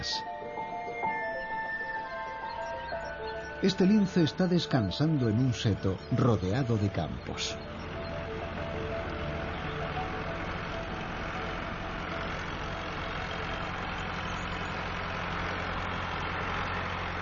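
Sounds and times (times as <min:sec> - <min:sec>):
tractor engine running among fields: 0:00.0 - 0:17.2
speech: 0:03.6 - 0:07.7.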